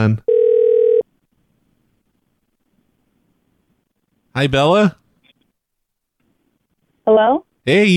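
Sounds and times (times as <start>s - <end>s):
speech: 0.0s - 0.3s, 4.4s - 5.0s, 7.1s - 7.9s
telephone call ring tone after dialing: 0.3s - 1.1s.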